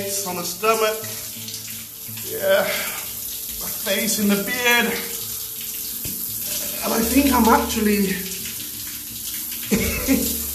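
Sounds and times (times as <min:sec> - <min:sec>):
speech: 0:00.0 - 0:01.4, 0:02.1 - 0:03.0, 0:03.8 - 0:05.2, 0:06.8 - 0:08.3, 0:09.7 - 0:10.3
cold shower water running: 0:00.0 - 0:10.5
person making short voiced sounds under a shower: 0:02.2 - 0:05.2, 0:06.7 - 0:08.3.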